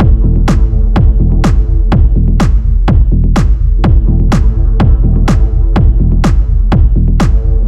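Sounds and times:
dark drums at 125: 0:00.0 - 0:07.6.

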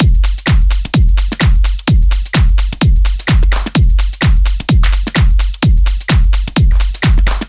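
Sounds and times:
full drum kit playing: 0:00.0 - 0:07.4.

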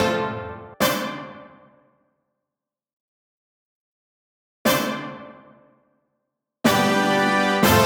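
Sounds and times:
brass line in D at 122 BPM: 0:00.0 - 0:00.7, 0:06.7 - 0:07.8.

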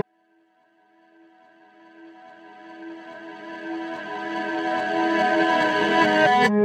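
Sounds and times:
reversed synth in A-flat minor: 0:02.4 - 0:06.6.

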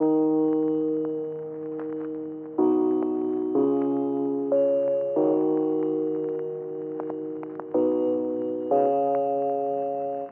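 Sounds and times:
keys playing in F minor: 0:00.0 - 0:10.3.

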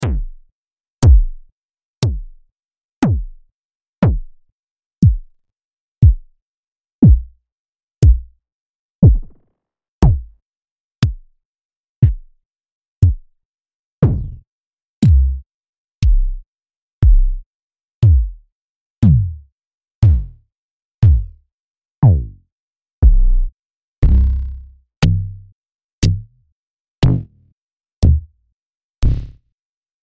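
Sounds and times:
kick drums: 0:00.0 - 0:00.4, 0:01.0 - 0:02.4, 0:03.0 - 0:03.4, 0:04.0 - 0:04.4, 0:05.0 - 0:05.4, 0:06.0 - 0:06.4, 0:07.0 - 0:07.4, 0:08.0 - 0:08.4, 0:09.0 - 0:09.4, 0:10.0 - 0:10.4, 0:11.0 - 0:11.3, 0:12.0 - 0:12.4, 0:13.0 - 0:13.3, 0:14.0 - 0:14.4, 0:15.0 - 0:15.4, 0:16.0 - 0:16.4, 0:17.0 - 0:17.4, 0:18.0 - 0:18.4, 0:19.0 - 0:19.4, 0:20.0 - 0:20.4, 0:21.0 - 0:21.4, 0:22.0 - 0:22.4, 0:23.0 - 0:24.2, 0:27.0 - 0:27.2, 0:28.0 - 0:28.3.

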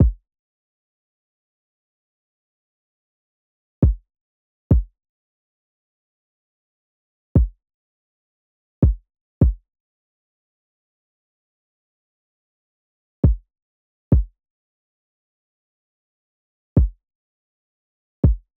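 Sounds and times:
kick drum: 0:00.0 - 0:00.2, 0:03.8 - 0:04.0, 0:04.7 - 0:04.9, 0:07.4 - 0:07.6, 0:08.8 - 0:09.6, 0:13.2 - 0:13.5, 0:14.1 - 0:14.4, 0:16.8 - 0:17.0, 0:18.2 - 0:18.5.

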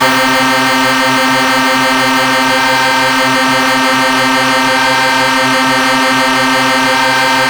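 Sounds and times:
C4 saw synth note: 0:00.0 - 0:07.4.

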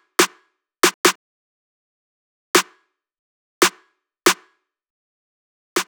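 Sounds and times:
snare drum at 140 bpm in E flat minor: 0:00.2 - 0:01.2, 0:05.8 - 0:05.9.

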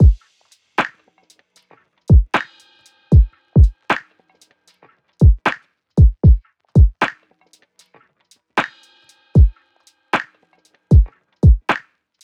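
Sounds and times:
drum loop in G minor: 0:00.0 - 0:00.2, 0:02.1 - 0:04.0, 0:05.2 - 0:07.2, 0:10.9 - 0:11.8.

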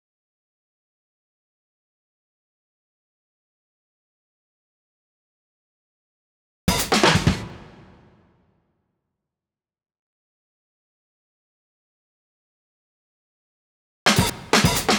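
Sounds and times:
acoustic drums: 0:06.7 - 0:08.1, 0:14.1 - 0:14.9.

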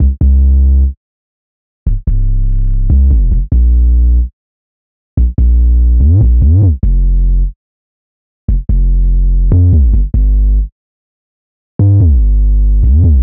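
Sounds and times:
808 synth bass in C minor: 0:00.0 - 0:01.0, 0:01.9 - 0:04.3, 0:05.2 - 0:07.6, 0:08.5 - 0:10.7, 0:11.8 - 0:13.2.

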